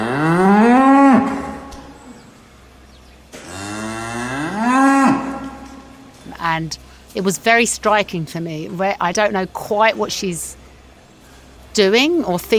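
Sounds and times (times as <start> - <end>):
cow separated from her calf mooing: 0.0 - 2.0, 3.4 - 6.1
speech: 6.6 - 10.6, 11.8 - 12.5.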